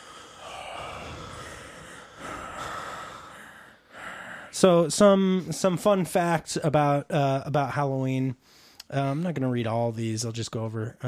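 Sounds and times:
heavy raspy breathing through a mask: 0.0s - 4.6s
speech: 4.6s - 11.0s.

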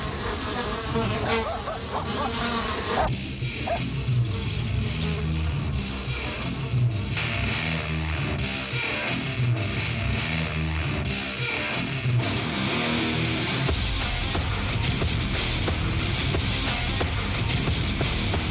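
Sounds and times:
insect buzz: 0.0s - 3.9s
dense loud music track: 3.0s - 18.5s.

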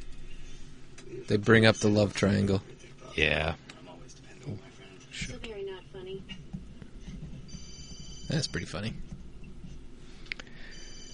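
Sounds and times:
low hum: 0.0s - 11.1s
speech: 1.1s - 3.7s, 4.4s - 6.4s, 8.3s - 9.1s
telephone ringing with an electronic trill: 7.6s - 8.6s.

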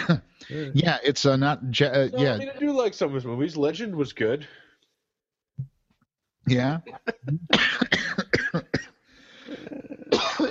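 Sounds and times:
person coughing after inhaling some ice: 0.0s - 0.3s, 6.9s - 10.4s
speech: 0.1s - 4.6s, 6.5s - 8.6s.

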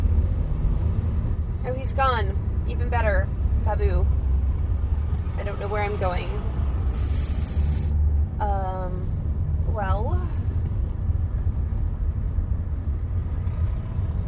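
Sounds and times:
heavy truck traffic rumbling past: 0.0s - 14.2s
speech: 2.0s - 4.2s, 5.4s - 6.6s, 9.7s - 10.4s.

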